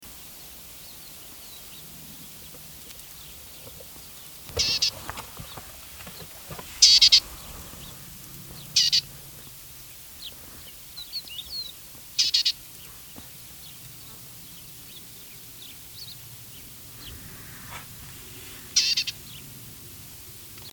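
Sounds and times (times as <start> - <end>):
Desert Lesser Whitethroat call: 4.5 - 9.2, 10.2 - 13.3, 18.7 - 19.5.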